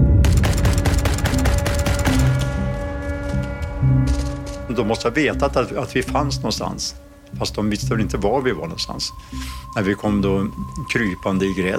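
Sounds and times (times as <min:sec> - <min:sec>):
low sustained droning hum: 0:00.0 - 0:11.7
heavy machine gun firing rapid bursts of thudding shots: 0:00.2 - 0:02.4
speech: 0:04.8 - 0:11.7.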